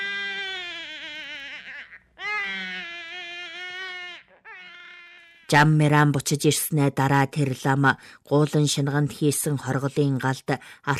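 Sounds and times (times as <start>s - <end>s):
child crying in high-pitched wails: 0.0s - 5.5s
speech: 5.5s - 10.9s.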